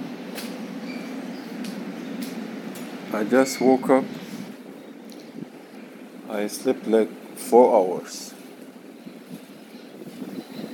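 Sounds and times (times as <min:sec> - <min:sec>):
steady wind buffeting against the microphone: 0:00.0 - 0:07.4, 0:08.0 - 0:10.7
speech: 0:03.1 - 0:04.2, 0:06.3 - 0:08.3.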